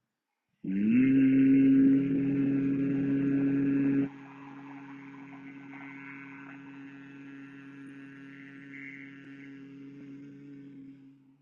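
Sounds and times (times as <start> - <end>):
person humming on an exhaled breath during a breathing exercise: 0.7 - 4.1, 7.4 - 11.4.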